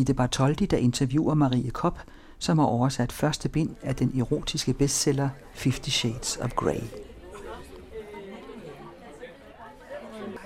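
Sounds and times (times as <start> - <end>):
speech: 0.0 - 7.1
audience chatter in a bookshop café: 3.6 - 10.4.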